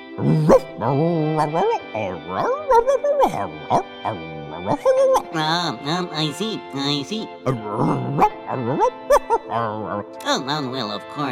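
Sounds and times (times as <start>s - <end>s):
human voice imitating a dog with yips, yelps and barky whines: 0.2s - 6.4s, 7.5s - 10.1s
speech: 0.2s - 11.3s.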